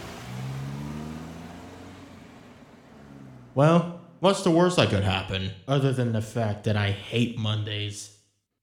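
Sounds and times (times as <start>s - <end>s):
car engine pulling away: 0.0s - 5.3s
speech: 3.6s - 8.2s.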